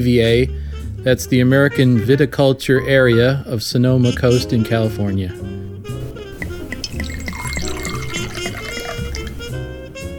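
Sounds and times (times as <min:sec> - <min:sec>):
speech: 0:00.0 - 0:05.6
2006 Pinot Noir red wine pouring into a glass: 0:06.0 - 0:10.0.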